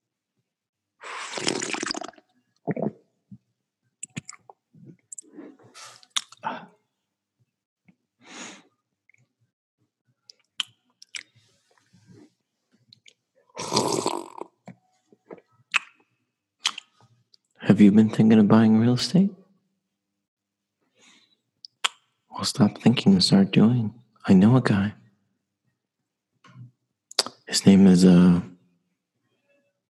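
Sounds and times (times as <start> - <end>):
person slurping coffee: 1.0 - 3.0, 13.6 - 14.5
coffee being swallowed in gulps: 1.3 - 5.6
speech: 17.7 - 19.4, 22.4 - 25.0, 27.6 - 28.5.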